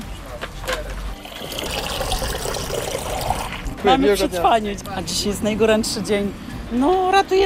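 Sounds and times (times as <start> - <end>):
water gushing from a water tanker into containers: 1.2 - 3.7
speech: 3.8 - 7.4.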